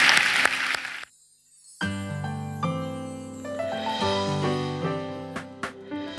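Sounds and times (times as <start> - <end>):
church audience clapping at the close of a service: 0.0 - 1.0
sustained keyboard music with steady chords: 1.8 - 6.1.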